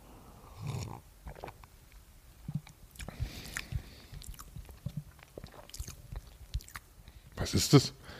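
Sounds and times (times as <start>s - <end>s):
swallowing: 0.6s - 1.6s, 2.4s - 6.9s
wet slurps of someone sipping a cocoa drink: 2.5s - 6.8s
mouth clicks: 2.5s - 6.9s
speech: 7.4s - 8.0s.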